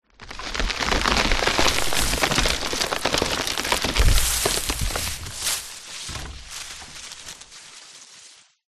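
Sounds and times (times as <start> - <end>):
tree falling impact: 0.2 - 8.3.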